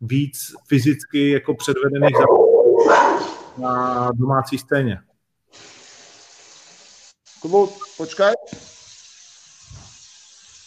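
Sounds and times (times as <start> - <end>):
speech: 0.0 - 5.7, 7.4 - 8.7
water gushing from an open tap: 5.5 - 10.6.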